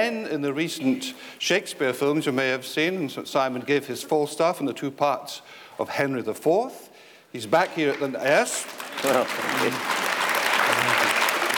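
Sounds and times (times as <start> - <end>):
speech: 0.0 - 10.0
audience applauding: 7.6 - 11.5.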